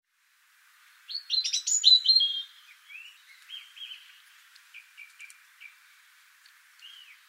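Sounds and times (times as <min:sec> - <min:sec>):
European robin Erithacus rubecula singing twittering notes: 0:00.9 - 0:07.2.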